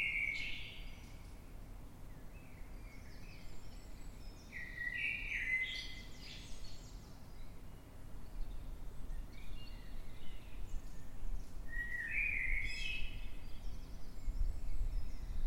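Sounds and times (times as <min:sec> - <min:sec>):
Eurasian blackbird singing at night in London: 0:00.0 - 0:01.2, 0:02.2 - 0:15.4.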